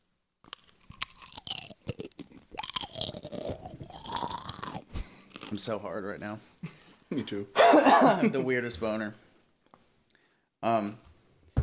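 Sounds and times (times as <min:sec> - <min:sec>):
crunchy chips being eaten: 0:00.4 - 0:05.7
speech: 0:05.5 - 0:09.2, 0:10.6 - 0:11.0.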